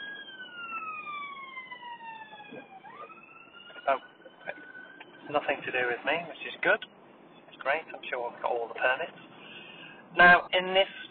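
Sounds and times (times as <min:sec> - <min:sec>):
emergency siren wailing outdoors: 0:00.0 - 0:06.4
street noise: 0:00.0 - 0:11.0
speech: 0:03.9 - 0:04.1, 0:05.3 - 0:07.0, 0:07.6 - 0:09.3, 0:10.1 - 0:11.0.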